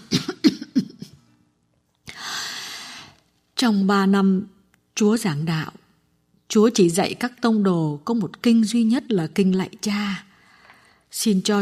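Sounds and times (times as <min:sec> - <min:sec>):
woman coughing: 0:00.0 - 0:01.2
steady broadband hiss: 0:00.0 - 0:11.5
speech: 0:03.6 - 0:05.8, 0:06.5 - 0:10.3, 0:11.1 - 0:11.5.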